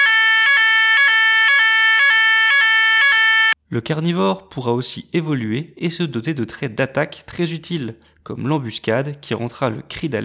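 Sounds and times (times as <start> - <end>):
electronic two-tone alarm siren: 0.0 - 3.6
speech: 3.7 - 10.2.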